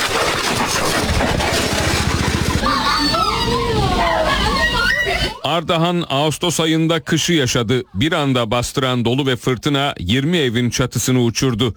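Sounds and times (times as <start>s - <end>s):
loud continuous motorcycle engine drone recorded on helmet camera: 0.5s - 4.0s
laughter: 1.5s - 6.0s, 7.2s - 8.6s
speech: 5.4s - 11.7s.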